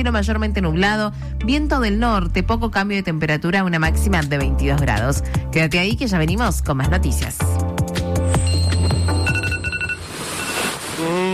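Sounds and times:
speech: 0:00.0 - 0:07.6
alarm clock ringing in rapid bell-like bursts: 0:08.4 - 0:10.7.

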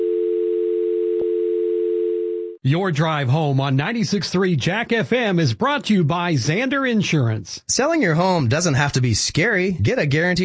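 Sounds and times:
telephone dial tone: 0:00.0 - 0:02.6
speech: 0:02.6 - 0:10.4.

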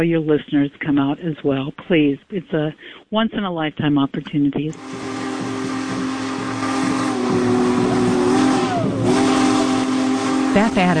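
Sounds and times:
speech: 0:00.0 - 0:05.2, 0:10.6 - 0:10.9
hissing: 0:04.7 - 0:10.9
steam locomotive whistle blowing: 0:04.8 - 0:10.9.

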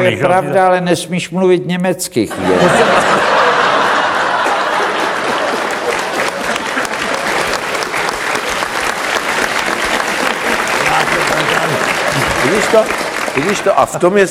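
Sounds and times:
speech: 0:00.0 - 0:03.4, 0:12.7 - 0:14.2
scattered chuckles in the crowd: 0:02.3 - 0:13.6
loud sustained audience applause: 0:02.6 - 0:14.2.

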